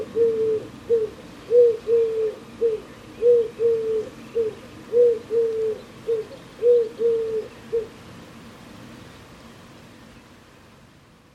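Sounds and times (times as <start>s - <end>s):
bird calling in soft low hoots: 0.0s - 7.9s.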